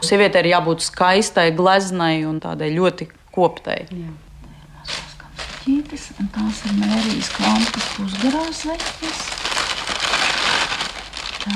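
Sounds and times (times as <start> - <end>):
speech: 0.0 - 4.2, 5.6 - 9.4
paper rustling while unwrapping museum objects: 4.9 - 11.5.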